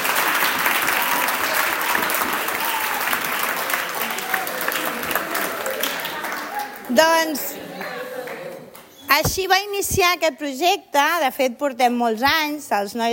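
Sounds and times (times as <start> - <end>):
audience applause: 0.0 - 8.8
speech: 6.9 - 7.6, 9.1 - 13.1.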